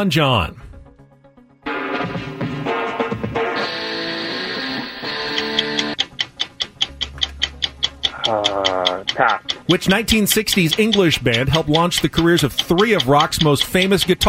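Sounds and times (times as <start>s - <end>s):
speech: 0.0s - 0.7s, 8.3s - 14.2s
bright busy instrumental game show countdown music: 1.6s - 14.2s
loud evenly spaced countdown timer ticks: 5.3s - 14.2s.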